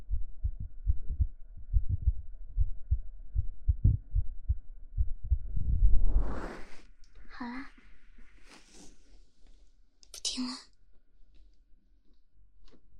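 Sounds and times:
rapid heartbeat: 0.0 - 6.4
rustling noise: 5.9 - 7.0, 7.7 - 9.6.

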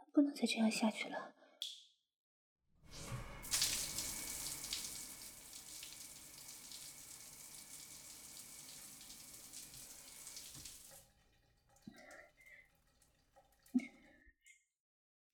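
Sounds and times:
speech: 0.2 - 1.4
cold running water rinsing in a bathroom: 3.4 - 14.1.

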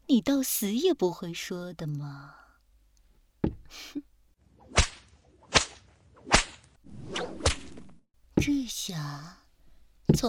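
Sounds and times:
speech: 0.1 - 2.4, 8.4 - 9.4
whip cracks: 4.7 - 8.0.

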